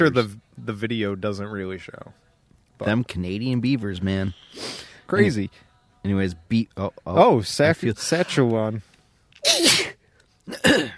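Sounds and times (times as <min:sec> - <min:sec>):
speech: 0:00.0 - 0:09.8
person sneezing onto their arm: 0:09.4 - 0:10.9.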